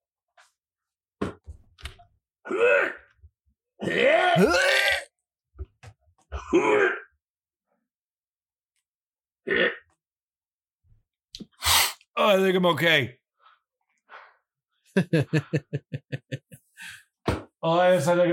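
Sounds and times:
speech: 2.5s - 3.0s, 3.9s - 4.7s, 12.3s - 13.2s, 15.0s - 18.3s
voice imitating vomiting and retching in a bathroom: 3.8s - 5.1s, 9.4s - 10.0s
choking coughs and spluttering: 4.4s - 5.0s
laughter: 15.0s - 16.8s.

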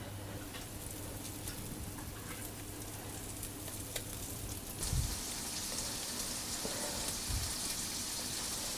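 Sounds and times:
thick fish fillet frying in butter in a pan: 0.9s - 8.7s.

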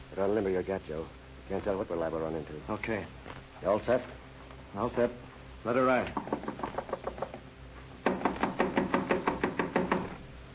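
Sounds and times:
speech: 0.2s - 6.5s
rapid hard knocking on a door: 6.1s - 7.4s, 8.0s - 10.2s.

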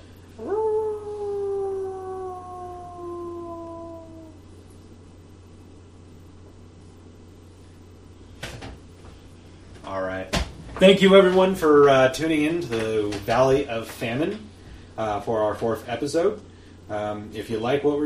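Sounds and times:
quiet hum: 0.0s - 18.0s
lone wolf howling: 0.4s - 4.5s
speech: 10.8s - 18.0s.

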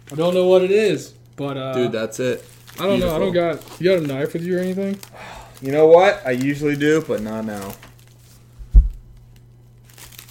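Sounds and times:
packing tape crinkling and tearing around something glass: 0.0s - 10.3s
rustly papery crackling: 0.0s - 10.3s
speech: 0.1s - 7.9s
dull thump: 8.6s - 9.0s.

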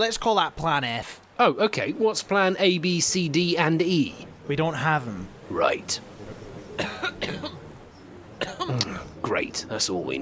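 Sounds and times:
speech: 0.0s - 6.1s, 9.4s - 10.1s
person coughing harshly: 6.8s - 7.6s, 8.4s - 9.0s.

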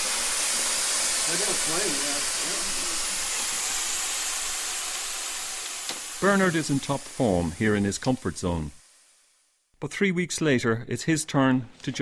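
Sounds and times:
vacuum cleaner used for chimney sweeping roaring: 0.0s - 8.6s
speech: 1.3s - 3.1s, 6.2s - 8.8s, 9.8s - 12.0s.

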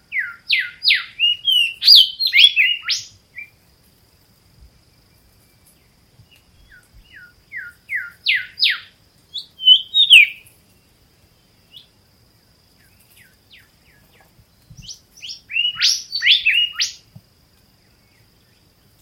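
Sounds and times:
Golden Whistler calling on Norfolk Island: 0.1s - 3.5s, 6.6s - 10.5s, 14.7s - 17.1s.

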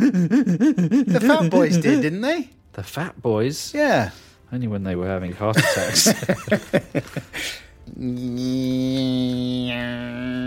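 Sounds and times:
laughter: 0.0s - 2.1s, 5.6s - 7.6s
speech: 0.1s - 10.4s
person vocally imitating an electric toothbrush: 8.0s - 10.4s.

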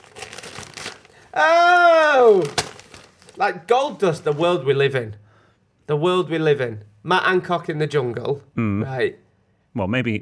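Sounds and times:
stiff brown paper crinkling and tearing as a package is unwrapped: 0.0s - 4.7s
speech: 1.4s - 2.6s, 3.4s - 5.2s, 5.9s - 9.2s, 9.8s - 10.2s.

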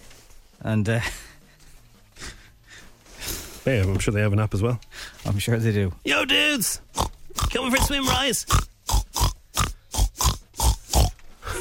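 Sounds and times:
speech: 0.6s - 1.2s, 3.6s - 6.9s, 7.5s - 8.7s
pig oinks strung together to carry a tune: 6.9s - 11.5s.

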